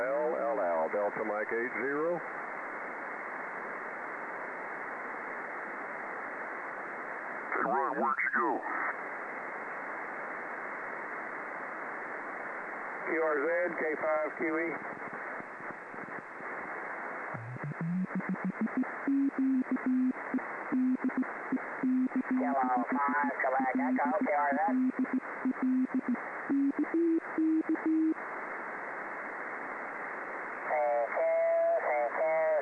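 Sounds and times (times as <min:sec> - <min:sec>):
radio hiss: 0:00.0 - 0:32.5
speech: 0:00.9 - 0:02.6, 0:07.9 - 0:09.1, 0:13.1 - 0:15.0
warbling garbled radio transmissions: 0:07.5 - 0:09.0, 0:13.0 - 0:28.3, 0:30.6 - 0:32.5
Morse code tone over a radio channel: 0:17.4 - 0:28.2.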